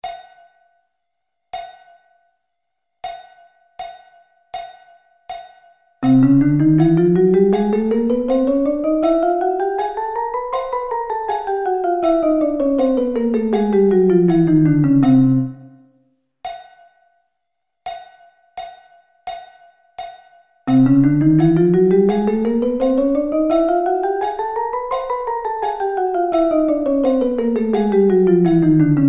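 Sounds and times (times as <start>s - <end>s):
chromatic scale: 6.0s - 15.8s, 20.7s - 29.0s.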